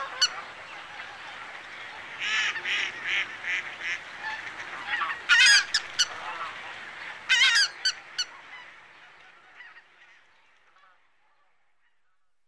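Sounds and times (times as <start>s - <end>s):
Lesser white-fronted goose Anser erythropus giving nasal yelping honks: 2.2s - 6.6s, 7.3s - 8.3s.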